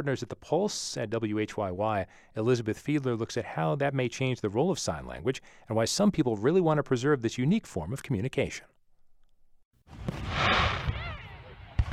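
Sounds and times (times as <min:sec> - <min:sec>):
speech: 0:00.0 - 0:08.7
fireworks crackling and rumbling: 0:09.9 - 0:11.9
sharp loud firework bang: 0:09.9 - 0:11.9.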